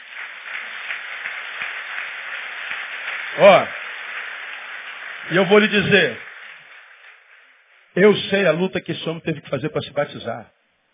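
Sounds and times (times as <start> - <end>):
crowd applauding: 0.0 - 8.7
speech: 3.4 - 3.8, 5.3 - 6.2, 8.0 - 10.6.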